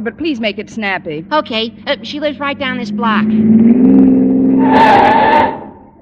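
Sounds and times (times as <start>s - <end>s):
car engine at a low idle: 0.0s - 4.8s
speech: 0.0s - 5.6s
car engine roaring: 1.1s - 6.0s
car tires screeching as the car skids to a stop: 1.8s - 6.0s.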